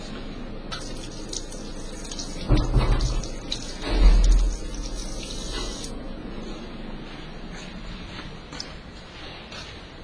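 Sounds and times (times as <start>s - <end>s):
running tap water splashing at a sink: 0.7s - 5.9s.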